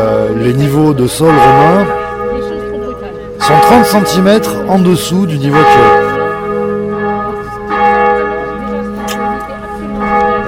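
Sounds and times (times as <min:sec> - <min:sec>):
church bell ringing: 0:00.0 - 0:10.4
faint voices murmuring: 0:00.0 - 0:10.4
speech: 0:00.4 - 0:02.0, 0:03.4 - 0:06.1.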